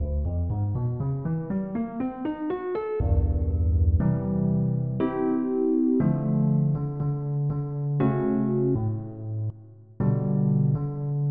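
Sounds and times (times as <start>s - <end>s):
flat piano: 0.0s - 11.2s.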